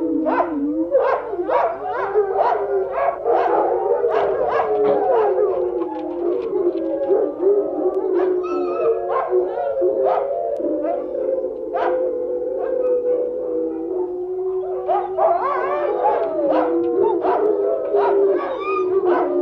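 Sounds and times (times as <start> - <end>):
wolves in a dense chorus of yips and short barks: 0.0 - 19.4.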